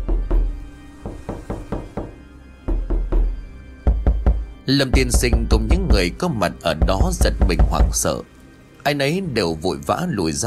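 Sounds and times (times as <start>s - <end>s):
knocking on the wooden boards of a coffin: 0.0s - 6.0s, 6.8s - 8.1s
speech: 4.7s - 10.4s.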